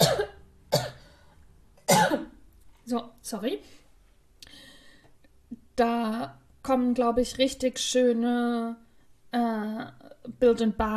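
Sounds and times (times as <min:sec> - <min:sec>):
person with a hoarse throat coughing: 0:00.0 - 0:01.0, 0:01.9 - 0:02.4
speech: 0:02.9 - 0:03.8, 0:05.8 - 0:10.9.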